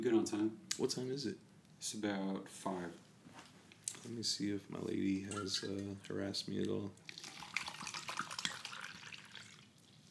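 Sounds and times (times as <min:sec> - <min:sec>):
speech: 0:00.0 - 0:03.1, 0:04.0 - 0:07.2
water splashing and trickling during a water break: 0:05.3 - 0:10.1.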